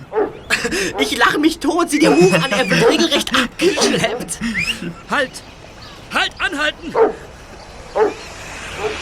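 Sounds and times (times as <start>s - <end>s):
steady hiss: 0.0s - 9.0s
laughter: 0.4s - 7.6s
speech: 0.6s - 7.3s
dog on a leash barking: 2.0s - 3.2s, 6.9s - 7.2s, 8.0s - 9.0s.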